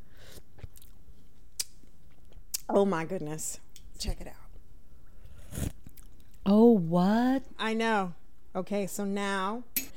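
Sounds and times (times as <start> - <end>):
person chewing clam chowder with quahogs and bacon: 0.4 - 2.7, 5.0 - 6.4
speech: 2.8 - 4.4, 6.5 - 9.8.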